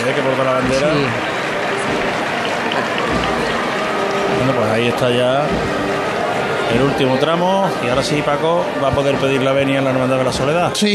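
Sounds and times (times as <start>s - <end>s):
speech: 0.0s - 1.3s, 2.8s - 3.6s, 4.3s - 5.8s, 6.7s - 10.9s
large crowd applauding from balconies: 0.0s - 10.9s
murmur of voices: 0.0s - 10.9s.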